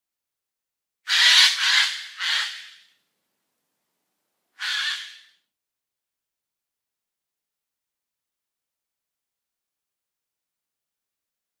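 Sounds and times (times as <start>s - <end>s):
Eurasian jay calling: 1.1s - 2.9s, 4.6s - 5.4s.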